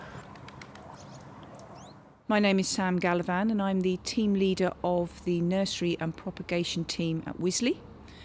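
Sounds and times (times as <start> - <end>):
faint birds twittering: 0.0 - 2.1
speech: 2.3 - 7.9.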